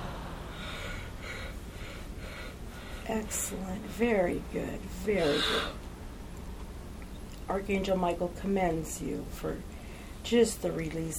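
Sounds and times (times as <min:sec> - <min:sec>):
slow exhale after a held breath during a guided breathing exercise: 0:00.0 - 0:03.1
speech: 0:03.1 - 0:05.8, 0:07.5 - 0:11.1.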